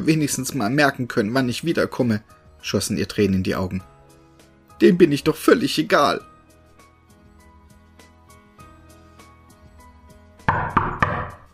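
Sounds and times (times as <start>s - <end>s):
speech: 0.0s - 3.9s, 4.8s - 6.3s
firm knocks on a wooden door: 10.5s - 11.5s.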